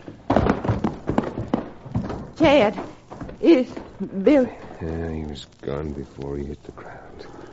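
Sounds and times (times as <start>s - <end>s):
horse hooves clopping and shuffling as rider dismounts: 0.0s - 4.6s
speech: 2.4s - 7.4s.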